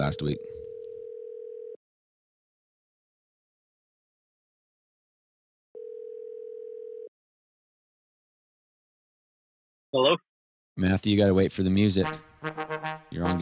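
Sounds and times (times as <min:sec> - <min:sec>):
speech: 0:00.1 - 0:00.6, 0:09.9 - 0:13.4
steady electronic telephone dial tone while placing a call: 0:00.1 - 0:01.8, 0:05.8 - 0:07.1.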